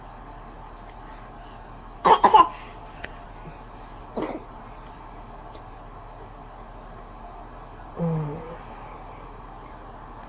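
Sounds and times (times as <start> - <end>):
person coughing: 2.1 - 2.6, 4.2 - 4.5.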